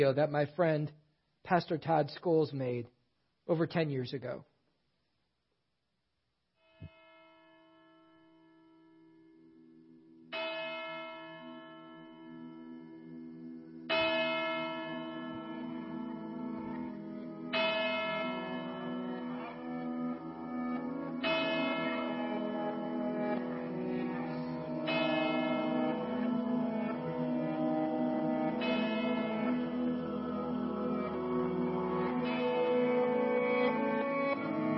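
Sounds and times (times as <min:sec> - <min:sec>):
speech: 0:00.0 - 0:04.5
church bells tolling slowly: 0:06.9 - 0:08.6, 0:10.3 - 0:13.2, 0:13.9 - 0:34.7.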